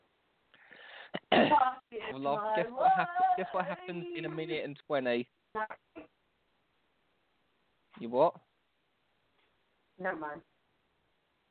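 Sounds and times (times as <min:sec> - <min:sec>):
breathy wheezy inhale: 0:00.5 - 0:01.2
one short abrupt cough: 0:01.1 - 0:01.8
speech: 0:01.4 - 0:05.9, 0:08.0 - 0:08.5, 0:10.0 - 0:10.5.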